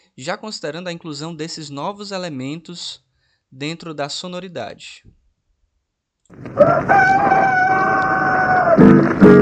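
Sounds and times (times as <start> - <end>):
speech: 0.2 - 5.2, 6.3 - 8.1, 8.8 - 9.3
rooster clucking: 6.3 - 9.2
rooster crowing: 6.4 - 9.0.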